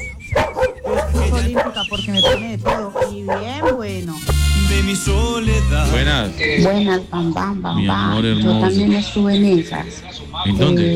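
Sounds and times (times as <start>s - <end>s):
dogs barking and yelping: 0.2s - 4.1s
speech: 1.4s - 10.9s.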